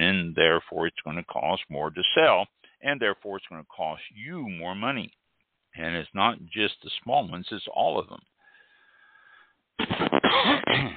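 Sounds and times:
speech: 0.8 - 5.2, 5.8 - 8.3, 9.8 - 10.9
man clearing his throat: 9.8 - 10.9
man coughing: 9.8 - 10.9.

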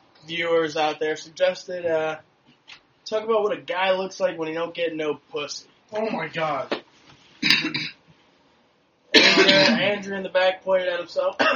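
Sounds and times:
speech: 0.3 - 2.3, 3.1 - 6.8, 7.6 - 7.8, 9.5 - 11.5
raspy throat clearing: 7.4 - 8.0, 9.2 - 10.0
short double cough: 7.4 - 8.0, 9.2 - 10.0.

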